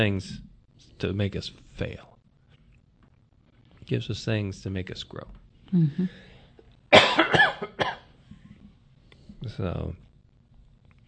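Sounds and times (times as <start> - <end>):
speech: 0.0 - 2.1, 3.9 - 6.3, 9.4 - 10.0
person coughing harshly: 6.9 - 8.1.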